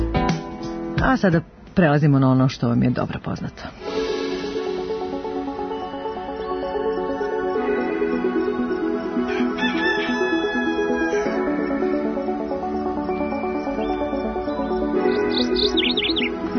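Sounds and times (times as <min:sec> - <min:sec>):
speech: 0:01.0 - 0:03.9
radio show closing instrumental jingle music: 0:03.8 - 0:16.5
birds chirping in a radio show's closing music jingle: 0:05.4 - 0:16.5.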